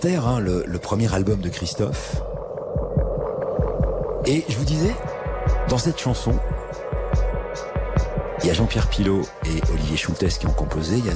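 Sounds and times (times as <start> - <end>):
speech: 0.0 - 2.4, 4.3 - 5.1, 5.7 - 6.8, 8.4 - 11.1
soft deep heartbeat in a song: 1.3 - 9.0.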